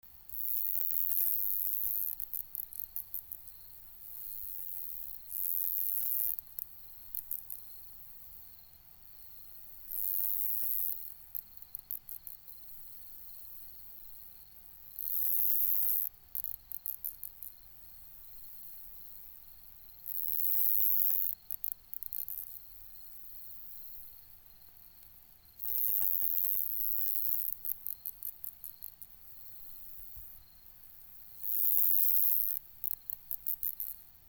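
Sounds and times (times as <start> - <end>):
Isophya costata bush cricket chirping: 0.2 - 34.1.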